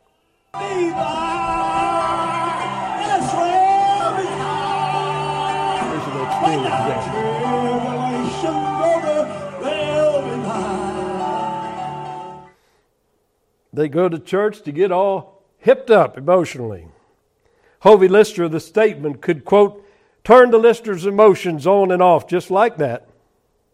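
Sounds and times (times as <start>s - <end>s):
speech: 0.6s - 1.4s, 13.8s - 17.0s, 17.8s - 23.1s
audience whooping and hollering at Southern Gospel shouting service: 0.6s - 11.6s
steady sustained gospel service music: 0.6s - 12.6s.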